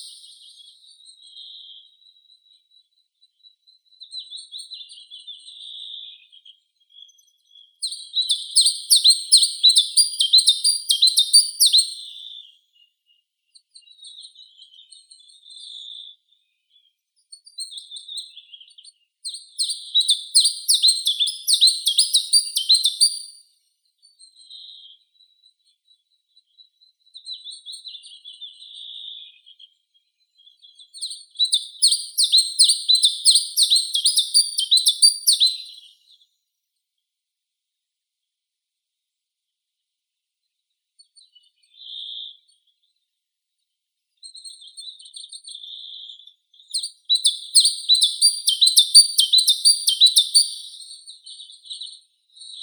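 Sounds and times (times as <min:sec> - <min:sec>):
chiffchaff Phylloscopus collybita singing: 0:08.3 - 0:12.0, 0:20.0 - 0:23.4, 0:31.6 - 0:35.8, 0:47.2 - 0:50.8.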